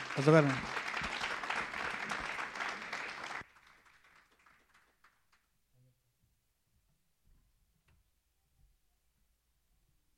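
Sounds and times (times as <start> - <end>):
audience applauding: 0.0 - 5.5.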